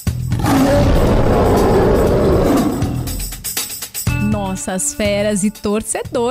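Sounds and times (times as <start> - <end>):
lion roaring: 0.3 - 3.5
speech: 4.6 - 6.2.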